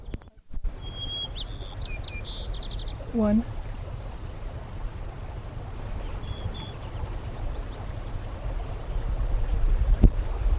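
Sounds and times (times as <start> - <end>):
low rumble: 0.0 - 10.5
white-crowned sparrow singing: 0.8 - 3.2, 5.9 - 8.2
speech: 3.1 - 3.6.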